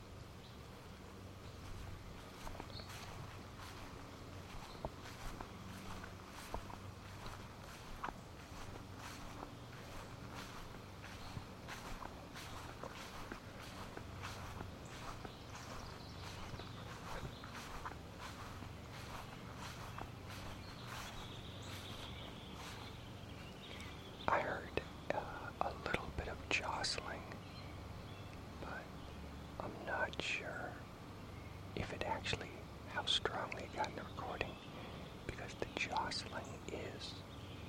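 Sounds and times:
faint breeze: 0:00.0 - 0:37.6
low outdoor rumble: 0:00.0 - 0:37.6
footsteps walking through backyard grass: 0:01.2 - 0:24.8.

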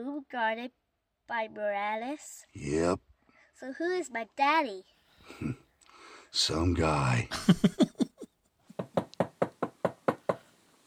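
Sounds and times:
speech: 0:00.0 - 0:05.6, 0:06.3 - 0:08.0
laughter: 0:07.3 - 0:08.4
firm knocking on a door: 0:08.7 - 0:10.4.

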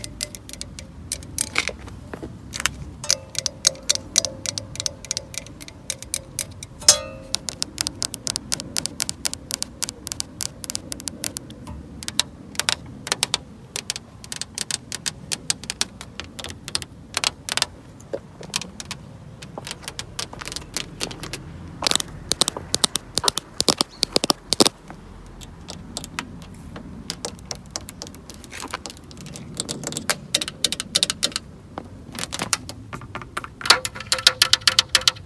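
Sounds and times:
low rumbling engine hum: 0:00.0 - 0:30.4
rapid dry taps on a car lens: 0:00.0 - 0:35.2.

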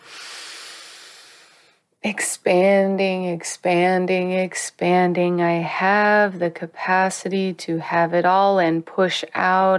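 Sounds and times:
deep inhale during guided breathing: 0:00.0 - 0:01.8
speech: 0:02.0 - 0:09.7.

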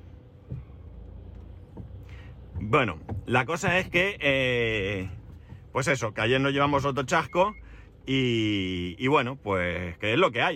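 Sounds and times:
car engine idling in an enclosed garage: 0:00.0 - 0:10.5
speech: 0:02.6 - 0:05.2, 0:05.8 - 0:10.5.

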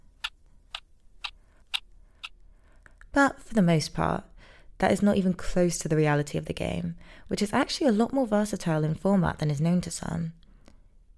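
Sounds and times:
chess clock ticking: 0:00.2 - 0:02.4
speech: 0:03.2 - 0:10.4.

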